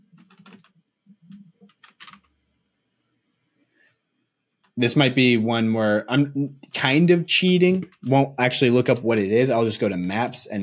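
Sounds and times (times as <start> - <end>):
typing on a computer keyboard: 0.1 - 2.4
speech: 4.8 - 10.6.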